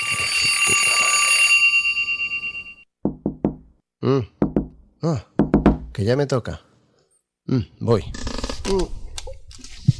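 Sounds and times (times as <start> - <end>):
alarm clock ringing with bright electronic tone: 0.0 - 2.8
speech: 4.0 - 4.4, 5.0 - 5.3, 6.0 - 6.7, 7.5 - 9.0.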